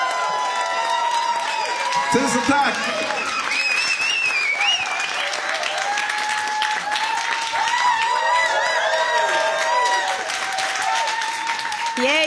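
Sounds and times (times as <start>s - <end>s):
high whoops and cheers from crowd: 0.0s - 12.2s
large crowd applauding warmly: 0.0s - 12.2s
speech: 2.1s - 3.3s.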